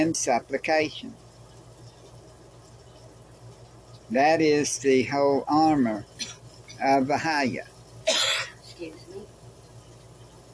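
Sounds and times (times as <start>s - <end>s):
speech: 0.0s - 1.2s, 4.1s - 6.2s, 6.8s - 7.7s, 8.8s - 9.3s
person sneezing: 8.1s - 8.6s.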